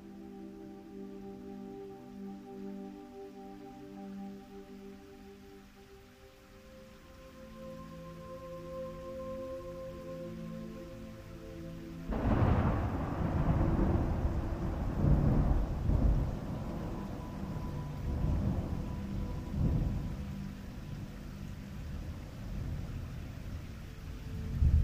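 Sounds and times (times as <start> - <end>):
sleep music with soft tones at 1111Hz frequency: 0.0 - 24.8
soft rain recorded in nature: 0.0 - 24.8
thunder recorded in nature: 12.1 - 20.2.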